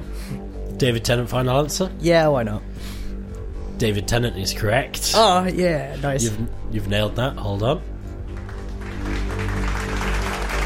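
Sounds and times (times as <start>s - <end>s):
speech: 0.8s - 3.0s, 3.8s - 7.9s
canned applause: 8.3s - 10.6s.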